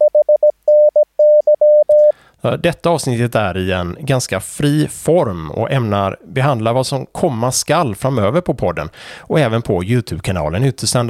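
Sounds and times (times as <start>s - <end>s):
Morse code radiotelegraphy tone spelling HNY: 0.0s - 2.1s
speech: 2.4s - 11.0s.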